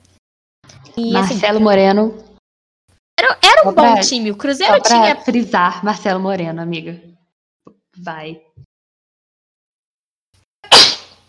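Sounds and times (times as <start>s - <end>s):
speech: 1.0s - 2.3s, 3.3s - 7.1s, 8.0s - 8.6s
person sneezing: 10.6s - 11.2s.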